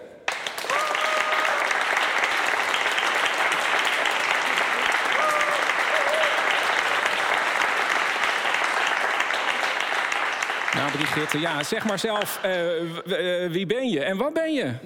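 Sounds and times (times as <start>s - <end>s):
audience applause: 0.3s - 13.0s
whistles and cheers: 0.6s - 2.0s, 5.0s - 6.8s
speech: 11.0s - 14.8s.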